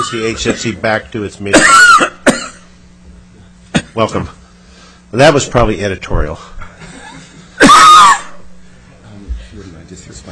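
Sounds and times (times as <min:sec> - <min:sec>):
speech: 0:00.0 - 0:02.2, 0:04.0 - 0:04.4, 0:05.1 - 0:06.6, 0:09.6 - 0:10.2
person coughing harshly: 0:00.1 - 0:00.8, 0:01.5 - 0:02.7, 0:03.7 - 0:04.0.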